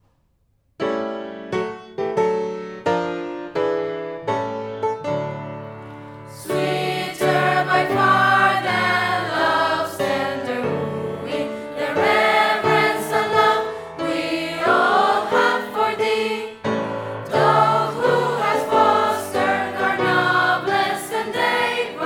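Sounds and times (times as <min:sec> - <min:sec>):
piano: 0:00.7 - 0:22.0
secondary school choir singing a hymn: 0:05.9 - 0:22.0.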